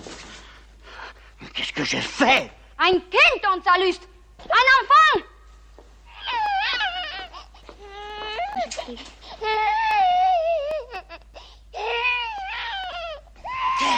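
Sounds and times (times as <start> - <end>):
speech: 1.8 - 5.3, 8.9 - 9.7
baby crying and babbling: 6.1 - 13.9.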